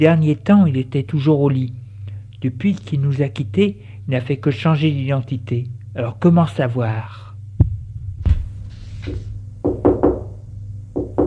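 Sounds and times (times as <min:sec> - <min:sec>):
speech: 0:00.0 - 0:01.8, 0:02.4 - 0:07.2, 0:09.0 - 0:09.3
low steady hum: 0:00.0 - 0:11.2
knocking on a door: 0:09.1 - 0:10.4, 0:11.0 - 0:11.2.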